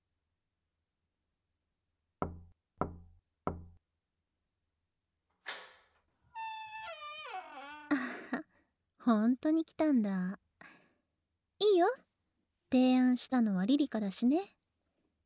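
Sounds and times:
slow sharp solid knocks on a door: 2.2 - 3.8
drawn-out creaking squeak falling in pitch ending in a short scrape: 6.4 - 8.0
speech: 9.0 - 10.4, 11.6 - 12.1, 12.7 - 14.6.

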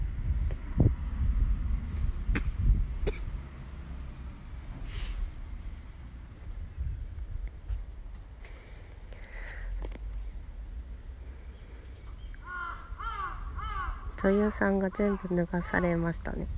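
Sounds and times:
low rumbling noise: 0.0 - 16.5
wind: 0.0 - 16.5
crow cawing: 12.4 - 15.9
speech: 14.2 - 16.5.

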